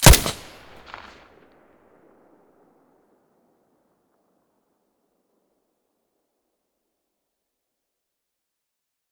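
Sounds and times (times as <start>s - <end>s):
silenced weapon gunshot: 0.0s - 1.2s.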